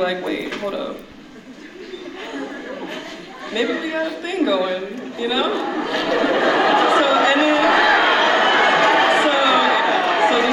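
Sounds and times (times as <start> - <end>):
speech: 0.0 - 1.1, 3.5 - 7.8
crowd chatter: 0.0 - 10.5
laughter: 1.3 - 4.2, 5.0 - 10.5
large crowd cheering excitedly: 5.6 - 10.5.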